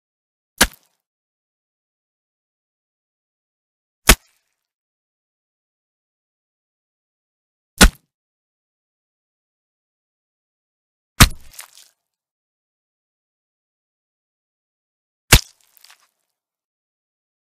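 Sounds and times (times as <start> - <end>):
axe chopping: 0.6 - 0.9, 4.1 - 4.3, 7.8 - 8.0, 11.2 - 11.8, 15.3 - 16.0.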